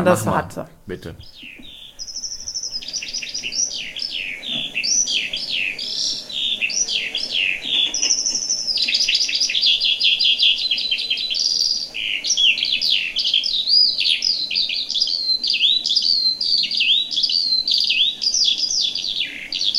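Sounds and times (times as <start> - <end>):
speech: 0.0 - 1.6
recorded bird song with trills and warbles: 0.0 - 19.7.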